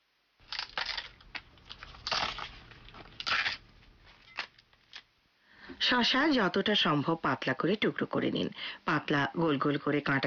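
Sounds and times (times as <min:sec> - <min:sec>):
washed lettuce being torn by hand into bite-size pieces: 0:00.4 - 0:03.7
speech: 0:05.8 - 0:10.2.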